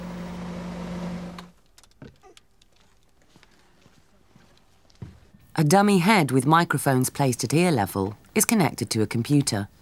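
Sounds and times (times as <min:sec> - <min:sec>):
loud steady car engine drone heard inside the car: 0:00.0 - 0:01.5
speech: 0:05.6 - 0:09.7.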